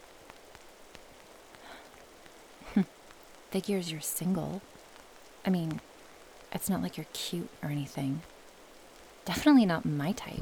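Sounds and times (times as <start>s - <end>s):
soft steady rain falling late at night: 0.0s - 10.4s
speech: 2.8s - 4.8s, 5.4s - 5.9s, 6.5s - 8.3s, 9.3s - 10.4s.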